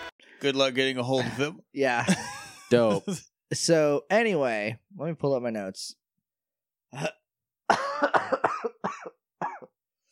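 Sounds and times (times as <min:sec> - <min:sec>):
speech: 0:00.4 - 0:06.0, 0:06.9 - 0:08.3
wet phlegmy cough: 0:06.9 - 0:09.8.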